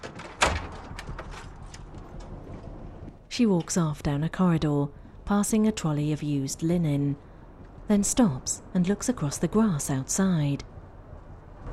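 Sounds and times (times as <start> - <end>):
door shutting with a muffled thud: 0.0 - 1.5
speech: 3.4 - 7.3, 7.9 - 10.7.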